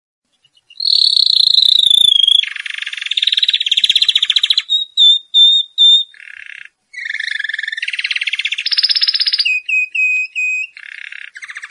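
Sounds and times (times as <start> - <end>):
canary singing varied tours: 0.3 - 11.6.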